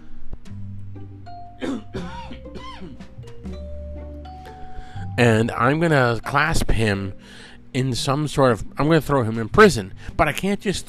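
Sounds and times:
person coughing from allergy: 1.6s - 3.1s
throat clearing: 1.6s - 3.1s
speech: 5.2s - 10.8s.

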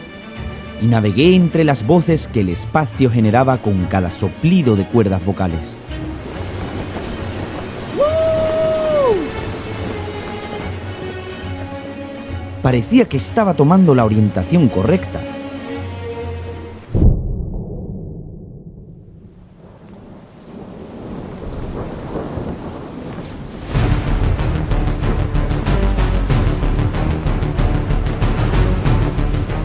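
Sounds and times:
speech: 0.8s - 5.9s, 12.6s - 15.2s
heavy rain pouring: 4.3s - 13.6s, 19.1s - 29.6s
loud thunderclap rolling into low rumble: 5.9s - 11.8s, 16.9s - 29.6s.

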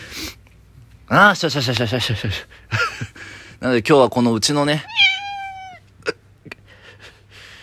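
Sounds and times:
speech: 1.1s - 5.0s
pet house cat meowing: 4.8s - 5.9s.

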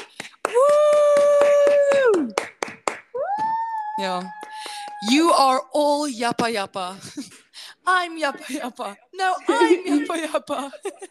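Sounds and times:
few people clapping: 0.0s - 5.6s
long sustained vocal cheer: 0.5s - 2.4s, 3.2s - 5.5s, 9.4s - 10.2s
speech: 4.0s - 7.3s, 7.9s - 11.0s
laughter: 8.2s - 11.0s.

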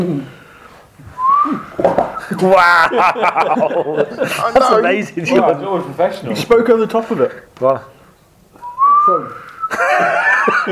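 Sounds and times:
speech: 0.0s - 0.4s, 2.4s - 7.9s, 9.0s - 10.7s
person whistling a clear steady tone: 1.1s - 2.5s, 8.6s - 9.8s
laughter: 2.2s - 5.1s, 9.7s - 10.7s.

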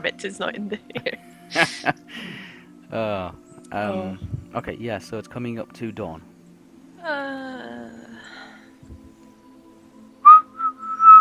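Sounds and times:
speech: 0.0s - 6.3s
laughter: 0.7s - 2.0s
person whistling clumsily: 10.2s - 11.1s.

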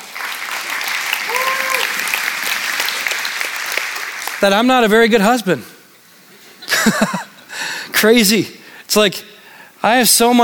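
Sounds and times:
audience clapping: 0.0s - 5.0s
short high-pitched cheer: 1.3s - 2.1s
speech: 4.4s - 5.7s, 6.9s - 7.2s, 8.0s - 10.4s
laughter: 6.6s - 7.5s.

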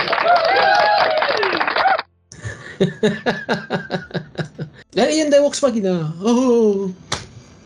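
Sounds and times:
crowd applause with cheering from a soundboard: 0.0s - 4.0s
laughter: 0.0s - 4.9s
speech: 2.8s - 4.2s, 5.0s - 7.0s.

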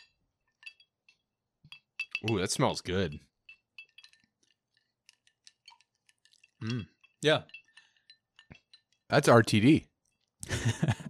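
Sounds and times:
shot glasses of whiskey clinking in a toast: 0.0s - 4.9s, 5.6s - 9.1s
speech: 2.2s - 3.3s, 6.6s - 7.6s, 9.1s - 11.0s
laughter: 10.4s - 11.0s.

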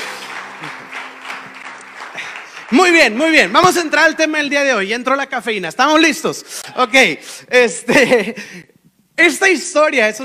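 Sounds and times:
church congregation applause: 0.0s - 4.3s
speech: 0.6s - 0.9s, 2.7s - 10.2s.

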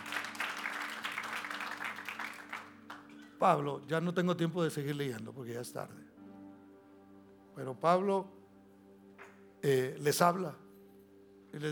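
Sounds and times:
room full of people applauding: 0.0s - 3.3s
speech: 3.4s - 6.1s, 7.6s - 8.4s, 9.6s - 10.6s, 11.5s - 11.7s.

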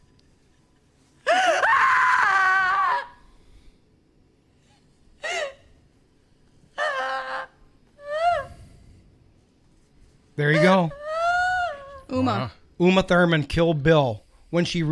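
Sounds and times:
woman's wailing gasping cries: 1.2s - 3.2s, 5.2s - 5.7s, 6.7s - 8.8s, 10.6s - 12.5s
woman's long anguished guttural scream: 1.3s - 3.2s, 6.8s - 8.5s, 10.6s - 12.3s
speech: 10.4s - 11.0s, 12.1s - 14.9s.

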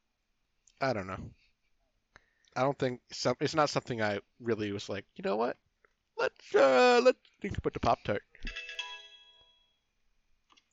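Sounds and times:
speech: 0.8s - 1.4s, 2.6s - 5.6s, 6.2s - 8.6s
phone text message notification tone: 8.5s - 9.8s.

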